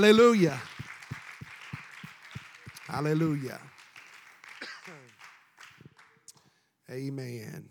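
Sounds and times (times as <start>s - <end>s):
people calling out: 0.0s - 0.7s
speech: 0.0s - 0.7s, 2.9s - 3.7s, 6.9s - 7.6s
church audience clapping hands in praise: 0.0s - 6.6s.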